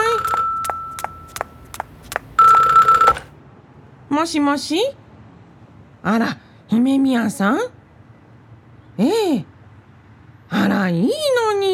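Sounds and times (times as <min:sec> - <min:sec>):
telephone ringing: 0:00.0 - 0:01.8, 0:02.4 - 0:03.3
speech: 0:04.2 - 0:05.0, 0:06.0 - 0:07.8, 0:09.0 - 0:09.5, 0:10.8 - 0:11.7.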